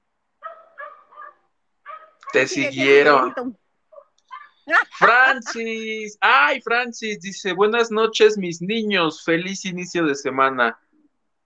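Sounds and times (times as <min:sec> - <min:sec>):
dog barking: 0:00.4 - 0:05.5
laughter: 0:02.3 - 0:03.5, 0:04.7 - 0:06.3
speech: 0:02.3 - 0:03.6, 0:04.7 - 0:10.8.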